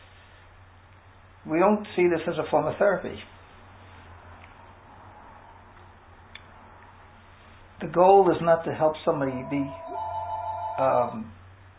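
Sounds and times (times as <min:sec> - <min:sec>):
speech: 0:01.4 - 0:03.4, 0:07.9 - 0:09.9, 0:10.8 - 0:11.4
telephone electronic ring tone: 0:09.3 - 0:11.3.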